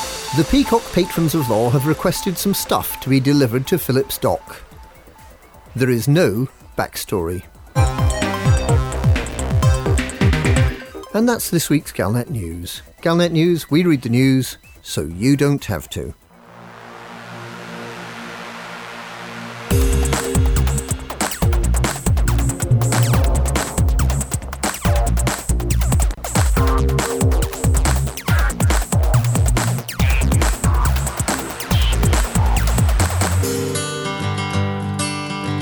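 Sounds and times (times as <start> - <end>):
music track with driving beat and dense layered instruments: 0.0 - 5.7, 7.5 - 11.1, 19.5 - 35.5
speech: 0.3 - 4.7, 5.8 - 7.9, 11.1 - 16.2.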